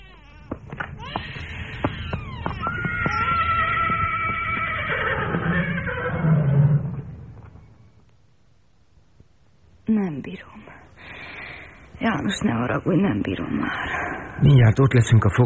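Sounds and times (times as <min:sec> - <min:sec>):
horse neighing: 0:01.5 - 0:07.2
speech: 0:12.0 - 0:15.4.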